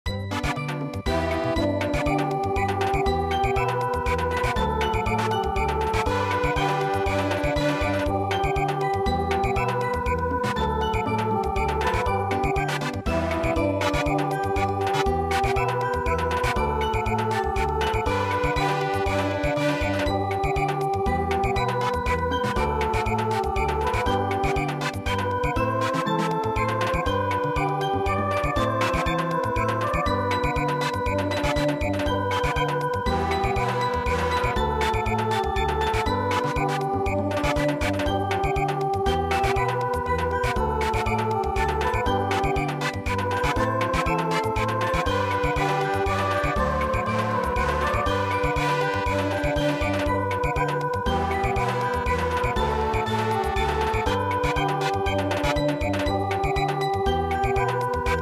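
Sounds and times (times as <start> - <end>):
German samba dance song: 0.1 - 58.2.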